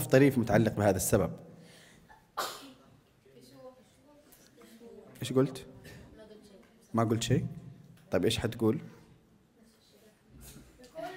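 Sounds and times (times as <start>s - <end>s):
speech: 0.1s - 1.5s, 5.2s - 5.7s, 6.9s - 8.9s
person sneezing: 2.2s - 2.9s.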